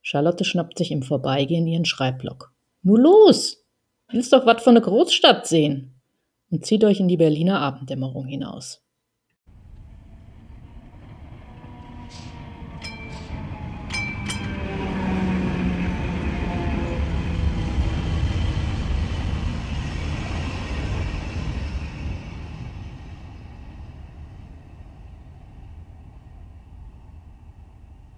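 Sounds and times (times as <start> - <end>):
speech: 0.1 - 8.8
tram rumbling through the city: 9.5 - 28.1
rails squealing and whining under a tram: 10.0 - 23.5.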